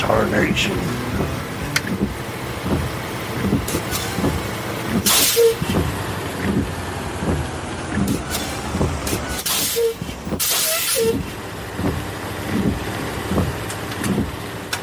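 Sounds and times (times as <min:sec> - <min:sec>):
heavy rain pouring: 0:00.0 - 0:14.8
speech: 0:00.1 - 0:01.4.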